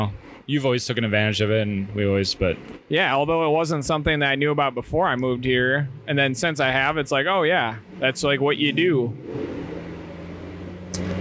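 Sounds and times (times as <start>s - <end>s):
speech: 0.0s - 9.7s
loud truck passing on a highway: 5.8s - 11.1s.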